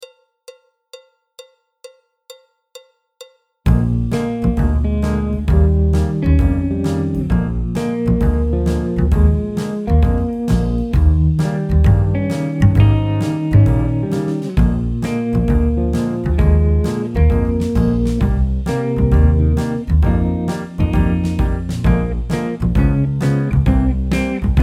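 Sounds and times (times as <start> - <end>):
alto part: 3.7 - 24.6.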